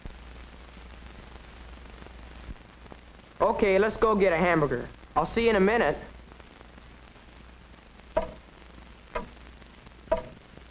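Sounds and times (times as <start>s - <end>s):
quiet hum: 0.0s - 10.7s
speech: 3.4s - 6.1s
large hall clock ticking slowly: 8.2s - 8.5s, 9.1s - 9.4s, 10.1s - 10.4s.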